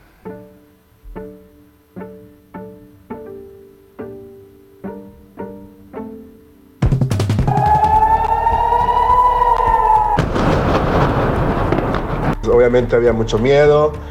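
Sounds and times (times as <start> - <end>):
rocket air raid siren in Israel wailing: 7.5 - 12.5
heavy rumbling noise: 7.5 - 13.3
speech: 12.6 - 14.0.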